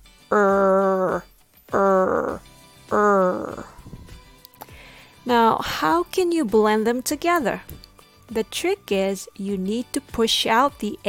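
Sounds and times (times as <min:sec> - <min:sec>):
person imitating dog growling: 0:00.3 - 0:03.8
speech: 0:05.6 - 0:11.0.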